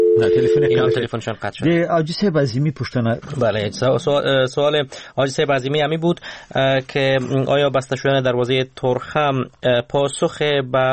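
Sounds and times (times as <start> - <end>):
distorted phone-quality voice talking: 0.0 - 1.0
telephone tone on a faulty phone line: 0.0 - 1.0
speech: 0.2 - 10.9.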